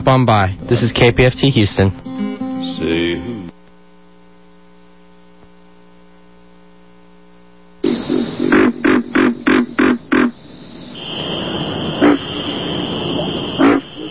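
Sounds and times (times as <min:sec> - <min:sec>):
speech: 0:00.0 - 0:02.0, 0:02.6 - 0:03.5
pig frog croaking in deep grunting pulses: 0:07.8 - 0:14.0.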